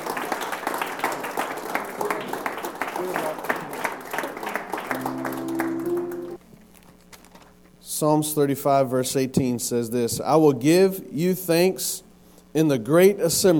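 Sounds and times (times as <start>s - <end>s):
crowd clapping hands in applause in praise of God: 0.0s - 6.4s
sustained organ-like tone: 4.9s - 6.4s
speech: 8.0s - 13.5s.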